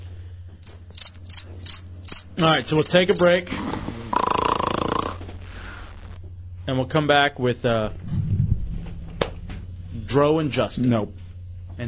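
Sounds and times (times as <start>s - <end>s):
low constant hum: 0.0s - 11.8s
high-pitched cricket chirping sound effect: 0.6s - 5.2s
speech: 2.4s - 3.7s, 6.7s - 8.1s, 10.1s - 11.2s.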